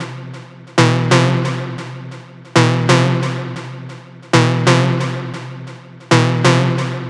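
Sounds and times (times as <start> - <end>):
techno synth loop: 0.0 - 7.0.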